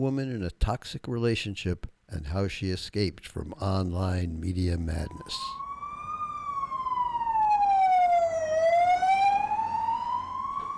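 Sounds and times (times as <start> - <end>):
speech: 0.0 - 5.6
low traffic rumble: 4.0 - 10.7
police siren wailing: 4.7 - 10.7.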